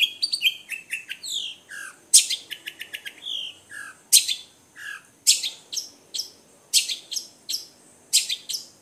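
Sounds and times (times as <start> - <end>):
long-tailed shrike combination song: 0.0 - 8.7.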